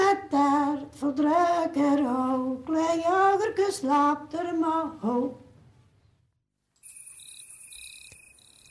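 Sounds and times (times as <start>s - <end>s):
speech: 0.1s - 5.4s
crickets chirping: 6.8s - 8.6s.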